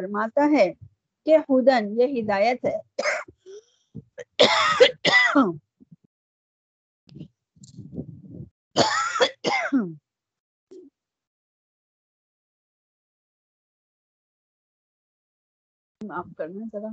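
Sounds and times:
speech: 0:00.0 - 0:03.4, 0:04.4 - 0:05.7, 0:08.8 - 0:10.0, 0:16.0 - 0:16.9
woman clearing throat and coughing with something caught in her throat: 0:03.0 - 0:05.6, 0:08.8 - 0:10.0
low throaty rumbling: 0:07.1 - 0:08.5.

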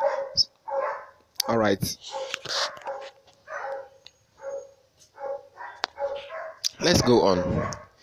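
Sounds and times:
neighbour's dog barking at door knock: 0:00.0 - 0:08.0
speech: 0:01.5 - 0:02.8, 0:06.8 - 0:07.8.

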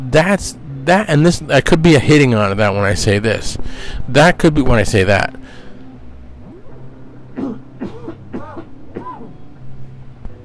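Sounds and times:
speech: 0:00.0 - 0:05.6
steady low hum: 0:00.0 - 0:10.4
raspy allergy cough: 0:07.4 - 0:09.3.

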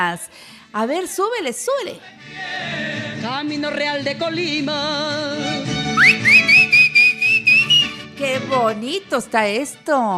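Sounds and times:
speech: 0:00.0 - 0:06.6, 0:08.2 - 0:10.1
person whistling a short melodic phrase: 0:06.0 - 0:08.1.

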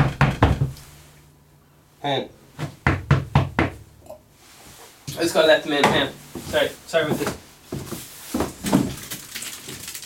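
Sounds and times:
firm knocks on a door: 0:00.0 - 0:00.8, 0:02.6 - 0:03.8
faint steady hum: 0:00.0 - 0:10.0
speech: 0:02.0 - 0:02.7, 0:05.2 - 0:07.4.

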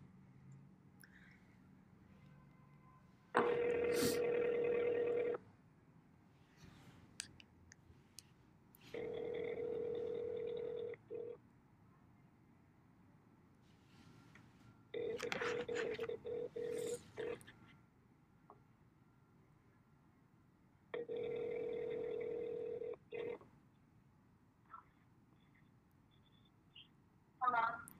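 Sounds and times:
faint noise: 0:00.0 - 0:27.9
telephone ring tones on the line: 0:03.4 - 0:05.4, 0:08.9 - 0:11.4, 0:14.8 - 0:17.4, 0:21.0 - 0:23.4.

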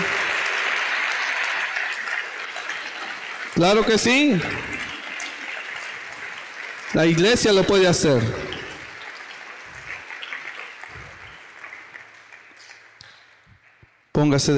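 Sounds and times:
church audience applauding loudly: 0:00.0 - 0:13.8
speech: 0:03.6 - 0:04.8, 0:06.9 - 0:08.6, 0:14.2 - 0:14.5.

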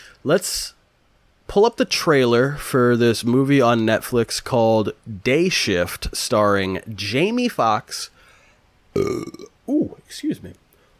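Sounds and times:
speech: 0:00.2 - 0:00.8, 0:01.5 - 0:08.1, 0:09.0 - 0:10.6
loud raspy low burp: 0:09.0 - 0:09.6.

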